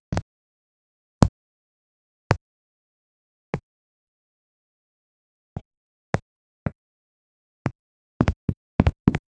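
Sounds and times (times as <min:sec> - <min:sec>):
8-bit walking sound: 0:07.6 - 0:09.2.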